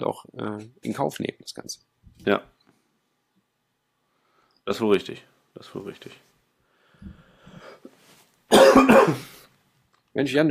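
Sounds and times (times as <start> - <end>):
speech: 0.0 - 2.6, 4.7 - 6.3, 8.5 - 9.4, 10.2 - 10.5
person clearing throat softly: 8.5 - 9.4
loud harsh coughing: 8.5 - 9.5.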